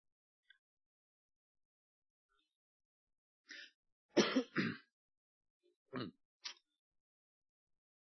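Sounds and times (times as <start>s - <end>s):
person coughing: 4.2s - 4.9s
throat clearing: 4.2s - 4.9s, 6.0s - 6.2s
speech: 5.9s - 6.2s.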